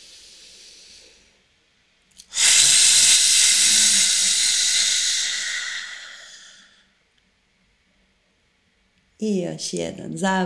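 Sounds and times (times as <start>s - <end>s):
deep breath in during a guided breathing exercise: 0.0s - 1.4s, 2.3s - 6.9s
speech: 9.2s - 10.4s.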